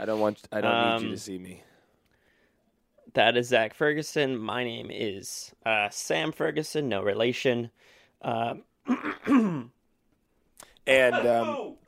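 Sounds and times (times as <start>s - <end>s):
speech: 0.0s - 1.7s, 3.1s - 9.8s, 10.9s - 11.8s
person clearing their throat: 8.8s - 9.8s
person coughing: 8.8s - 9.8s.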